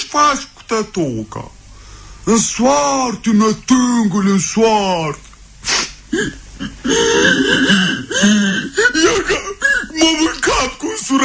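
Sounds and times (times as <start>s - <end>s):
speech: 0.1s - 1.6s, 2.3s - 11.2s
person whimpering and sobbing: 6.1s - 10.1s.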